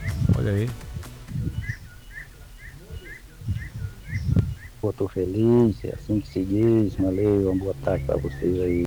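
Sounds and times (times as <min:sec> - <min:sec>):
birds chirping: 0:00.0 - 0:08.8
low voices: 0:00.0 - 0:08.8
speech: 0:00.3 - 0:00.8, 0:04.8 - 0:08.8.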